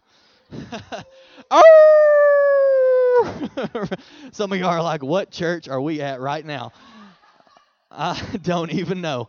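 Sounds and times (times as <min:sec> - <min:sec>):
speech: 0:00.7 - 0:01.9, 0:03.6 - 0:07.0, 0:07.9 - 0:09.2
audience imitating wolf howls: 0:01.5 - 0:03.3.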